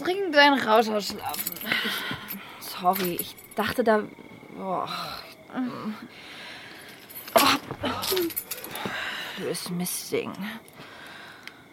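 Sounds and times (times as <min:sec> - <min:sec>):
speech: 0:00.4 - 0:02.0, 0:02.8 - 0:06.4, 0:07.8 - 0:10.8
keys jangling as they are handed over: 0:01.1 - 0:03.7, 0:06.9 - 0:08.9.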